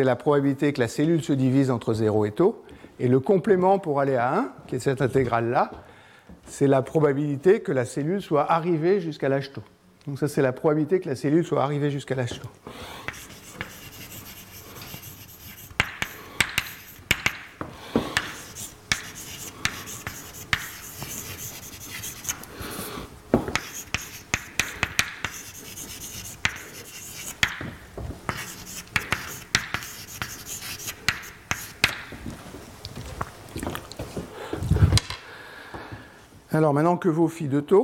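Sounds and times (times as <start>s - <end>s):
speech: 0.0s - 5.9s, 6.5s - 13.1s, 36.7s - 37.8s
writing on a board: 13.0s - 22.5s, 23.5s - 27.7s, 28.3s - 32.0s.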